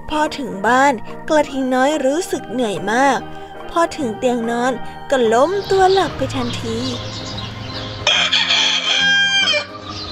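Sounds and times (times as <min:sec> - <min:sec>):
speech: 0:00.1 - 0:07.2
rooster crowing at dawn: 0:08.0 - 0:09.8.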